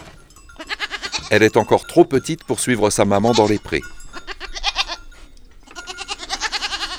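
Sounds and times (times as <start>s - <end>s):
young goat bleating in a barn: 0.0s - 6.9s
speech: 1.3s - 4.0s.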